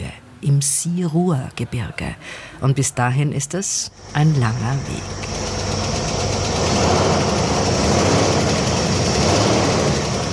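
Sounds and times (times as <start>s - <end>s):
speech: 0.4s - 5.6s
car engine drone while driving south out of Marrakesh Morocco: 3.8s - 10.3s
road rumble from car driving south out of Marrakesh Morocco: 3.9s - 10.3s.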